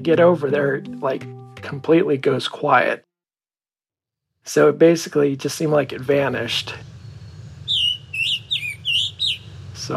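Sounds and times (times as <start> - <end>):
speech: 0.0 - 3.1, 4.4 - 6.9
Scarlet Tanager song high in the tree canopy: 6.7 - 9.8.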